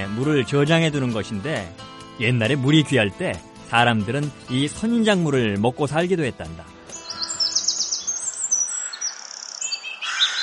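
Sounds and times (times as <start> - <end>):
faint outdoor background in the Arizona desert: 0.0 - 10.4
speech: 0.2 - 6.8
small birds chirping among saguaro cacti in the Arizona desert: 6.8 - 10.4.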